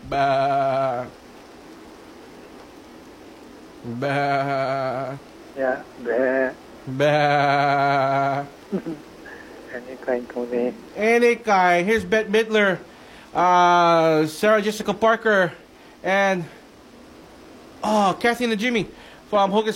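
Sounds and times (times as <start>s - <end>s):
soft steady hiss: 0.0s - 19.7s
goat bleating: 0.1s - 1.1s
speech: 0.1s - 1.2s, 3.8s - 9.1s, 9.8s - 16.6s, 17.8s - 19.7s.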